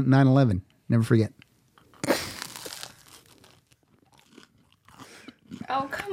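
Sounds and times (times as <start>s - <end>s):
speech: 0.0s - 1.4s
soft wet chewing of a tuna melt sandwich: 1.7s - 6.1s
crunching bite into a toasted tuna melt sandwich: 1.8s - 5.7s.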